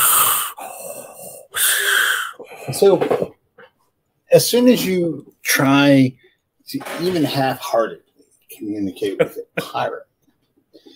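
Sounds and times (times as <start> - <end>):
person deliberately wheezing with harsh breathy rasps and whistling tone: 0.0 - 2.7
speech: 2.7 - 3.3, 4.4 - 10.1.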